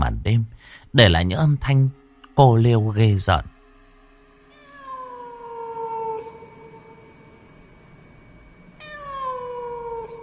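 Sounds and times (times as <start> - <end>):
speech: 0.3 - 3.5
cat meowing as it is chased out through a window at night: 4.5 - 6.8, 8.8 - 10.2.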